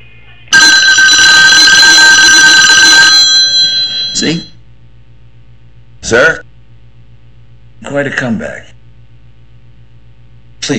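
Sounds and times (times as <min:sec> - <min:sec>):
telephone bell ringing in a harsh metallic trill: 0:00.5 - 0:04.5
speech: 0:04.2 - 0:04.5, 0:06.1 - 0:06.4, 0:07.9 - 0:08.7.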